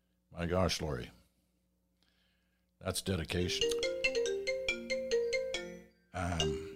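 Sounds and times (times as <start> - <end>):
speech: 0.3 - 1.2, 2.8 - 3.8, 6.2 - 6.7
phone ringtone with bright melodic tones: 3.5 - 6.7.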